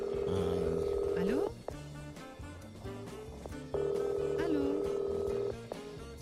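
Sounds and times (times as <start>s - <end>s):
long ringback tones from a phone line as a call is placed: 0.0s - 1.5s, 3.8s - 5.6s
faint music: 0.0s - 6.2s.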